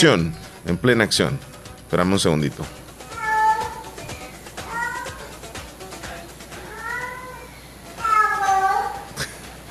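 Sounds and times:
speech: 0:00.0 - 0:02.8
cats yowling: 0:03.0 - 0:05.4, 0:06.7 - 0:09.1
laughter: 0:09.2 - 0:09.6.

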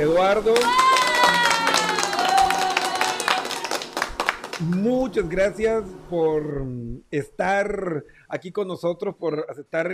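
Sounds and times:
speech: 0:00.0 - 0:00.9, 0:04.6 - 0:09.9
steady applause from a small group: 0:00.5 - 0:05.0.

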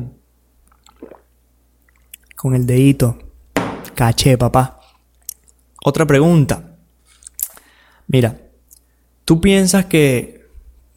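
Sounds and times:
sipping and swallowing water: 0:00.6 - 0:02.4
speech: 0:02.4 - 0:03.2, 0:04.0 - 0:04.8, 0:05.8 - 0:06.7, 0:08.1 - 0:08.4, 0:09.3 - 0:10.4.

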